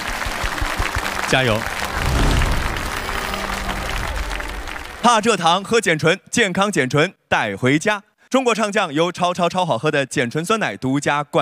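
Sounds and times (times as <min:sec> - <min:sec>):
audience applause for a singer at a singing competition: 0:00.0 - 0:05.8
speech: 0:01.3 - 0:02.3, 0:05.0 - 0:11.3.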